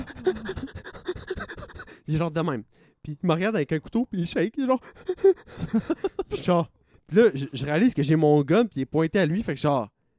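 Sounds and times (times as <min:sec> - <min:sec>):
voice imitating a terrified man hyperventilating with rapid panting breaths: 0:00.0 - 0:03.0, 0:04.8 - 0:06.2
speech: 0:00.2 - 0:00.8, 0:02.1 - 0:10.0.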